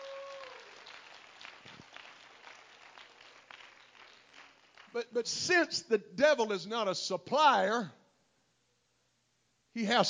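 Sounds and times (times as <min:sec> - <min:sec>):
congregation clapping their hands: 0:00.0 - 0:05.3
speech: 0:05.0 - 0:08.0, 0:09.8 - 0:10.0.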